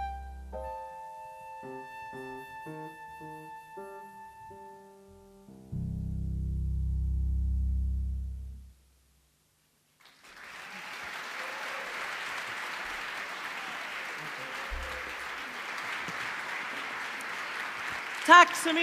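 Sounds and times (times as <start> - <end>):
low hum: 5.6 - 9.3
audience applause: 10.0 - 18.8
speech: 18.3 - 18.8.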